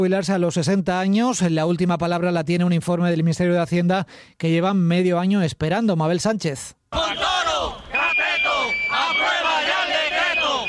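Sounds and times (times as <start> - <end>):
speech: 0.0 - 7.8
crowd of protesters chanting slogans in unison: 6.9 - 10.6
shrill whistle blowing a long sustained tone: 7.0 - 10.6.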